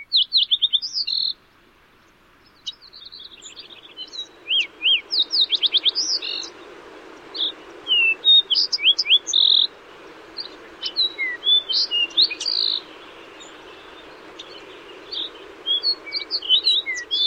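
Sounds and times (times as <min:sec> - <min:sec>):
fox sparrow and Lincoln's sparrow songs: 0:00.0 - 0:01.4, 0:02.0 - 0:17.2
steady rushing background: 0:03.4 - 0:17.2.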